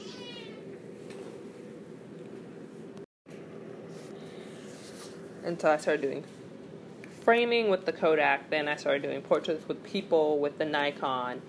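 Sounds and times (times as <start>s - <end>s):
cat meowing: 0.0s - 0.7s
steady hum: 0.0s - 11.4s
speech: 5.4s - 6.4s, 7.2s - 11.4s.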